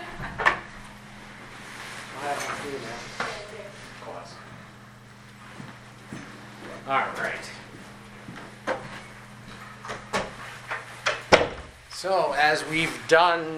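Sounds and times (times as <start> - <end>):
steady low hum: 0.0 - 12.0
speech: 6.9 - 7.6, 12.0 - 13.5
door shutting with a sharp thud: 11.1 - 11.8.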